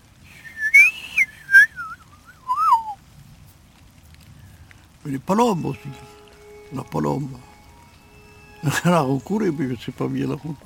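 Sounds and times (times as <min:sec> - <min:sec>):
person whistling an imitation of a woodpecker spring call: 0:00.3 - 0:03.0
speech: 0:05.0 - 0:07.5, 0:08.6 - 0:10.6.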